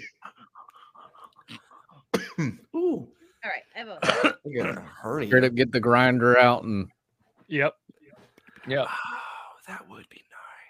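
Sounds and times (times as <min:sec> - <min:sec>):
person coughing: 0:02.1 - 0:02.6, 0:04.0 - 0:05.0
speech: 0:02.4 - 0:07.8, 0:08.7 - 0:10.2.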